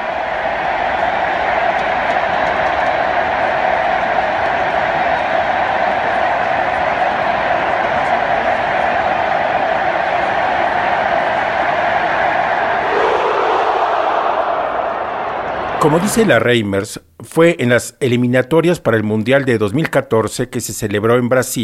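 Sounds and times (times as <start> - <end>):
huge stadium crowd shouting a chant in unison: 0.0 - 16.4
speech: 15.8 - 21.6.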